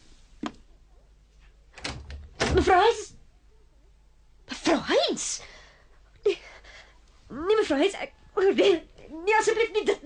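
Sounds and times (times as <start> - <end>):
room door closing suddenly with a sharp thud: 1.8 - 2.7
speech: 7.7 - 10.0.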